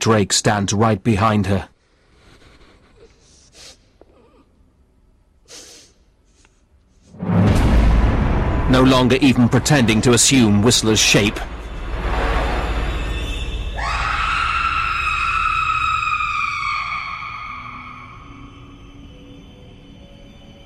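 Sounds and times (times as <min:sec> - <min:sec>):
speech: 0:00.0 - 0:01.7, 0:08.7 - 0:11.6
woman sniffing the air: 0:02.2 - 0:04.5, 0:05.4 - 0:06.7
woman whimpering: 0:04.1 - 0:04.6
loud rushing rumbling noise: 0:07.1 - 0:17.7
woman screaming long and high: 0:13.8 - 0:18.8.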